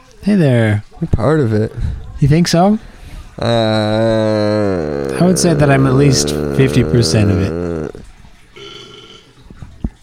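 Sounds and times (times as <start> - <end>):
speech: 0.2 - 7.8
drawn-out croaky burp: 3.4 - 9.3.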